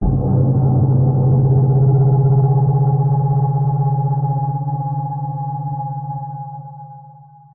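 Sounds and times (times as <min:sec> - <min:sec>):
intense abstract sci-fi impact sting ringing: 0:00.0 - 0:06.2.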